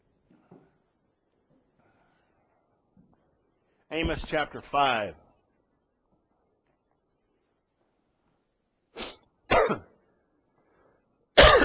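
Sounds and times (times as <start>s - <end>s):
speech: 3.9s - 5.2s
person coughing and clearing throat with a frog in the throat: 9.5s - 10.0s, 11.4s - 11.6s.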